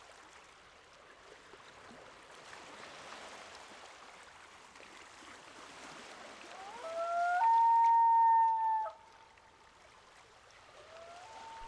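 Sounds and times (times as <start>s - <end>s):
common loon wail at a lake: 6.6s - 9.0s, 10.9s - 11.6s.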